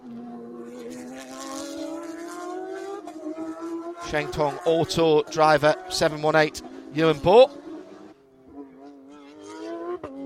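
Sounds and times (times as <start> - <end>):
Pro-Am race car engines whining through a chicane: 0.0 - 10.2
speech: 4.1 - 7.6.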